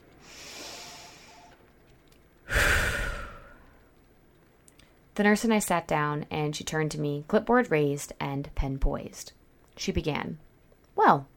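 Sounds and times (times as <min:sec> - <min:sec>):
slow deliberate breathing: 0:00.2 - 0:01.6, 0:02.4 - 0:03.9
speech: 0:05.2 - 0:11.3.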